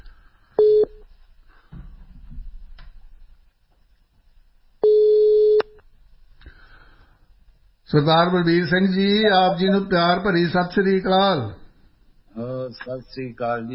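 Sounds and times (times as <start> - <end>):
telephone line tones while a call is placed: 0.6 - 1.0, 4.8 - 5.7
speech: 7.9 - 11.6, 12.7 - 13.7.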